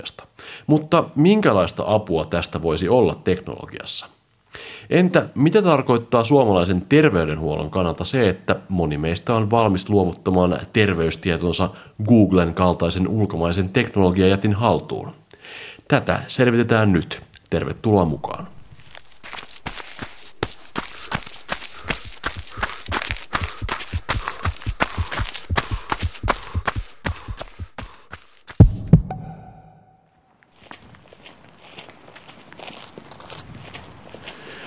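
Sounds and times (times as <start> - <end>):
speech: 0.0 - 18.6
footsteps of a person walking to a university faculty building in Helsinki: 18.3 - 29.6, 30.5 - 34.4
heavy thuds: 22.4 - 27.9, 28.6 - 30.0.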